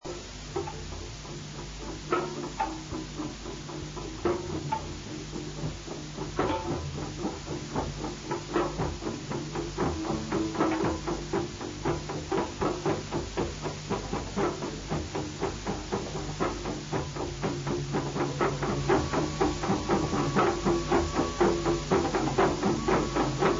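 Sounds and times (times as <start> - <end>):
drums: 0.0 - 23.5
flutes: 17.5 - 23.5.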